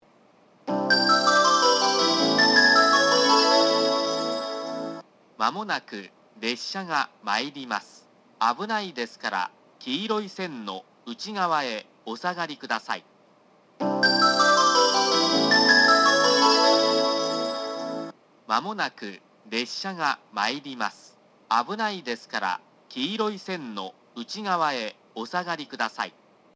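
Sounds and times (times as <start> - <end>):
station melody for an approaching up train at Yufuin: 0.7 - 5.0, 13.8 - 18.1
male station announcement at Yufuin: 5.4 - 13.1, 18.5 - 26.2.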